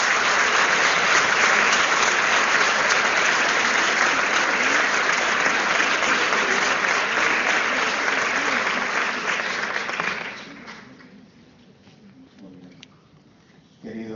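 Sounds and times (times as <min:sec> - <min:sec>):
large audience applauding: 0:00.0 - 0:11.1.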